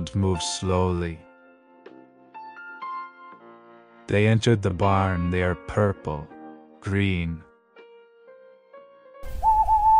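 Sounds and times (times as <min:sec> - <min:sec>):
speech: 0:00.0 - 0:01.3, 0:04.1 - 0:07.5
Scops owl steady clear whistled call: 0:09.2 - 0:09.9.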